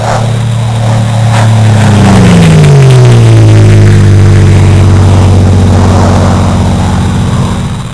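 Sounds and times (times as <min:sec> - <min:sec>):
air ambience: 0:00.0 - 0:07.9.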